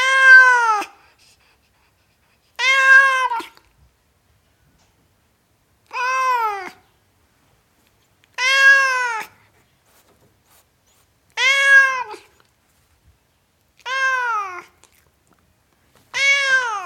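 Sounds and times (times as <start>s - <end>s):
tom cat meowing: 0.0s - 0.9s, 2.6s - 3.6s, 5.9s - 6.8s, 8.4s - 9.3s, 11.3s - 12.3s, 13.8s - 14.8s, 16.1s - 16.8s.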